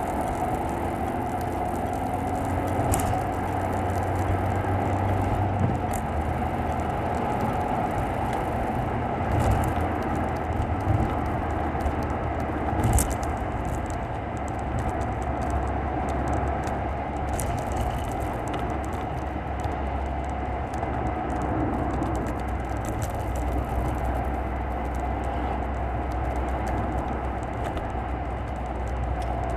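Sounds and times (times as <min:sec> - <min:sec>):
road and engine noise inside a moving car overtaking: 0:00.0 - 0:29.5.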